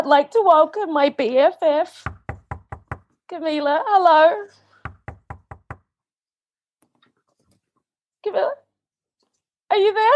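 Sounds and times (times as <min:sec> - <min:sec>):
speech: 0:00.1 - 0:02.1, 0:03.3 - 0:04.6, 0:08.2 - 0:08.6, 0:09.7 - 0:10.1
firm knocking on a door: 0:02.1 - 0:03.1, 0:04.9 - 0:05.9.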